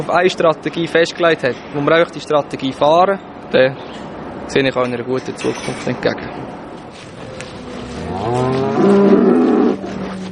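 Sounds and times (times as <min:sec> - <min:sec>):
speech: 0:00.0 - 0:06.6, 0:08.2 - 0:09.0
faint outdoor noise: 0:00.0 - 0:10.3
cow mooing on a pasture: 0:07.9 - 0:09.9.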